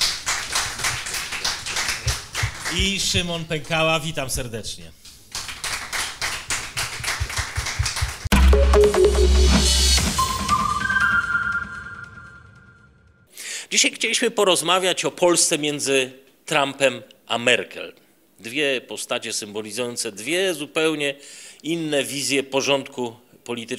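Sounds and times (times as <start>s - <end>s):
small audience applause with crisp hand claps: 0.0s - 3.1s, 5.4s - 8.3s
speech: 2.7s - 5.0s, 13.8s - 23.7s
loud electronic jingle with humming low notes and rising synth tones: 8.3s - 13.2s.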